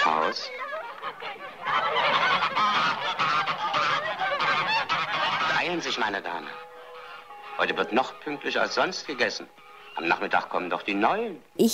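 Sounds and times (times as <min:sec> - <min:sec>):
flock of geese cackling and honking: 0:00.0 - 0:11.3
speech: 0:05.7 - 0:06.7, 0:07.6 - 0:11.7.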